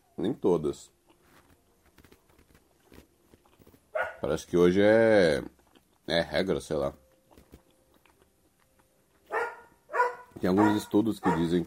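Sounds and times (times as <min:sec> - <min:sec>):
speech: 0:00.2 - 0:01.0, 0:04.2 - 0:07.0, 0:10.4 - 0:11.6
dog giving a loud sharp bark: 0:04.0 - 0:04.3, 0:09.3 - 0:11.6.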